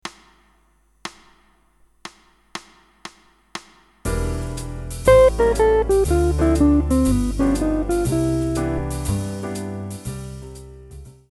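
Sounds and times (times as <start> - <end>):
guitar playing a scale exercise: 5.1 - 9.5.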